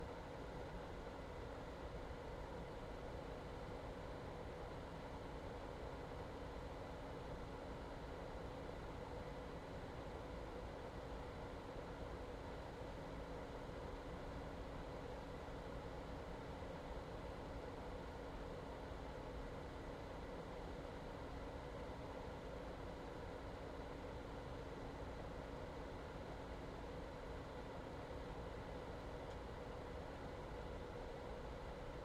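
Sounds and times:
small metal box ventilation fan with electric motor whirring at low intensity: 0:00.0 - 0:32.0.

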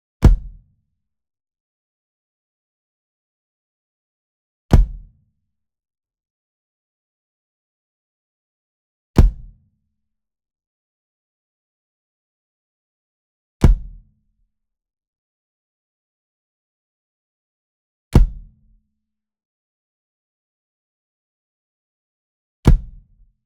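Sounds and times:
small kick drum hard hit: 0:00.2 - 0:00.6, 0:04.7 - 0:05.1, 0:09.2 - 0:09.6, 0:13.6 - 0:14.0, 0:18.2 - 0:18.5, 0:22.7 - 0:23.0.

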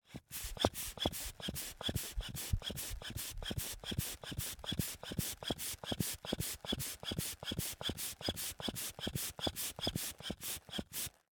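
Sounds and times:
leather, wood and brass hand bellows pumping and wheezing: 0:00.1 - 0:11.2.

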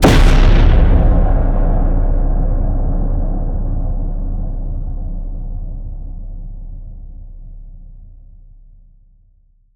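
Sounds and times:
distorted cinematic hit: 0:00.0 - 0:06.9.

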